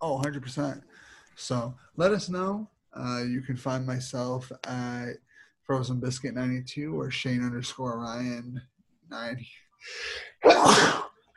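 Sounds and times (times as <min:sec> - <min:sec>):
speech: 0:00.0 - 0:11.1
loud sneeze: 0:10.4 - 0:11.2.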